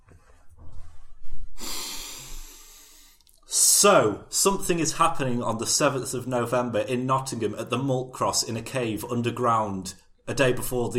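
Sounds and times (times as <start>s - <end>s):
deep inhale: 1.5s - 3.2s
speech: 3.8s - 10.9s.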